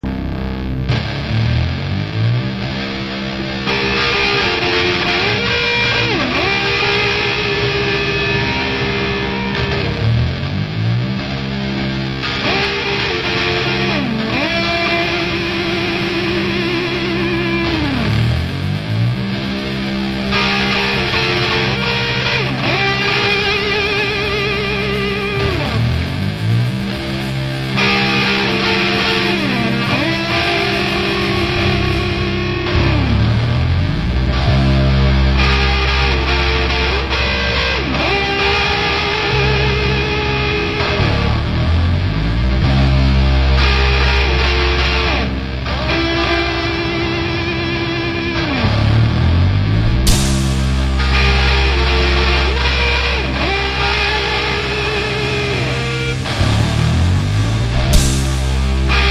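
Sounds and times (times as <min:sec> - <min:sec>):
electric tone: 0:00.0 - 0:59.0.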